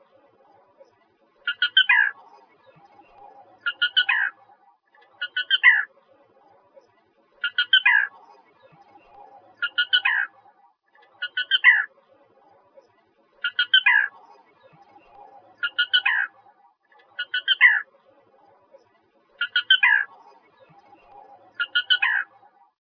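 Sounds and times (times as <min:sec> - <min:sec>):
California Black Rail calling: 0:01.5 - 0:02.1, 0:03.6 - 0:04.3, 0:07.4 - 0:08.1, 0:09.6 - 0:10.3, 0:11.2 - 0:11.9, 0:13.4 - 0:14.1, 0:15.6 - 0:16.3, 0:17.2 - 0:17.9, 0:19.4 - 0:20.1, 0:21.6 - 0:22.3.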